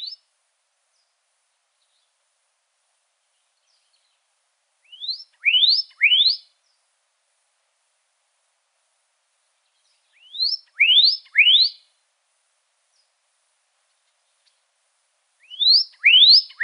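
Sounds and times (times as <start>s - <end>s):
pyrrhuloxia rising whistled call notes in Arizona: 4.8s - 6.5s, 10.2s - 11.9s, 15.4s - 16.6s.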